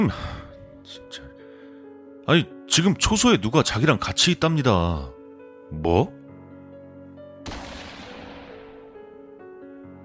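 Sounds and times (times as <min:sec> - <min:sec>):
speech: 0:00.0 - 0:01.2, 0:02.3 - 0:06.2
single gunshot sound effect: 0:07.4 - 0:09.0.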